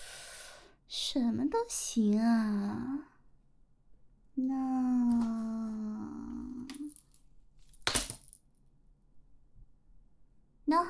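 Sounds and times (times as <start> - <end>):
speech: 1.2 - 3.1, 4.4 - 6.1, 10.7 - 10.8
metal dog chain leash jingling and rattling: 6.7 - 8.4.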